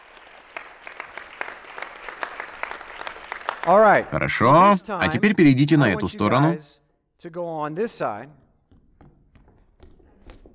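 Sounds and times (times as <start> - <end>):
crowd applauding: 0.0 - 6.5
speech: 3.6 - 8.4.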